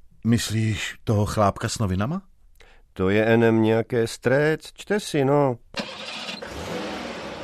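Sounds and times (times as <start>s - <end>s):
speech: 0.2s - 2.3s, 3.0s - 6.1s
Volga car engine cranking and catching: 5.8s - 7.4s.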